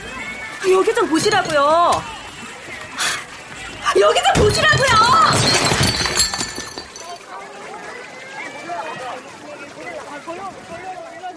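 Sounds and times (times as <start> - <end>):
speech: 0.6 - 2.2, 3.9 - 5.6
glass shattering: 4.2 - 7.2.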